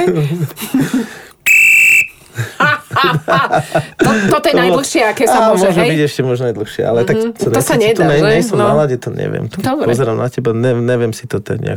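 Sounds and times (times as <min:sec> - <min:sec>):
speech: 0:00.0 - 0:01.3, 0:03.3 - 0:11.7
referee whistle blown into microphone: 0:01.4 - 0:02.3
laughter: 0:02.3 - 0:04.4.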